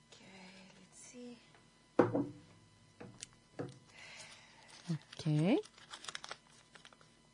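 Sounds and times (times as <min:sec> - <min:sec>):
speech: 0:02.2 - 0:02.4, 0:04.9 - 0:05.7
paper entry slips crinkling and rustling as they are shuffled for a prize draw: 0:04.7 - 0:07.0.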